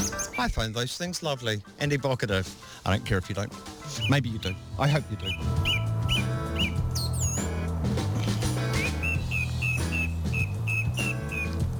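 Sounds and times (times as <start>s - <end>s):
steady backing music: 0.0s - 11.7s
thrush singing clear whistled phrases: 0.0s - 11.7s
speech: 0.4s - 5.8s.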